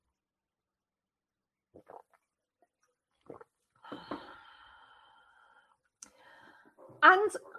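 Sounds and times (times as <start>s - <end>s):
person sipping water: 1.8s - 2.3s, 3.1s - 4.8s
breathy exhale: 3.9s - 6.8s
speech: 7.0s - 7.5s.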